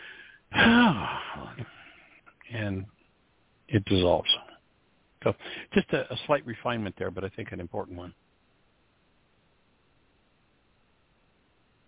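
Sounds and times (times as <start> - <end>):
person taking a breath: 0.0 - 2.2, 5.4 - 5.7
speech: 2.5 - 3.0, 3.7 - 4.4, 5.2 - 8.2.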